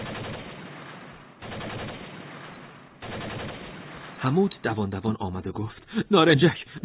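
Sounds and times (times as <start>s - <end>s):
machine gun firing on a house rooftop: 0.0s - 4.3s
speech: 4.2s - 6.8s.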